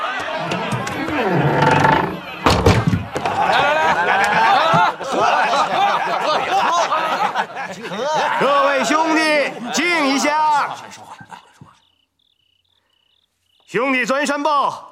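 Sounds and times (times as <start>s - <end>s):
noisy crowd chattering and laughing at a wedding gathering: 0.0s - 11.9s
heavy door slamming shut at a wedding gathering: 0.4s - 3.4s
speech: 14.0s - 14.9s.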